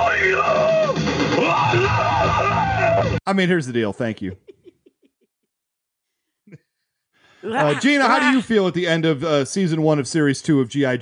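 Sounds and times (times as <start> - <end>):
gorilla screaming: 0.0 - 3.2, 7.5 - 8.5
speech: 3.2 - 4.5, 7.4 - 11.0
laughter: 4.0 - 5.3, 7.4 - 9.0.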